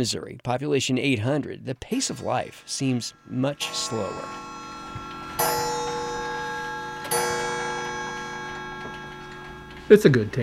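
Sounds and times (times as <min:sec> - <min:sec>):
speech: 0:00.0 - 0:05.1, 0:09.9 - 0:10.4
several old clocks ticking: 0:02.0 - 0:10.2.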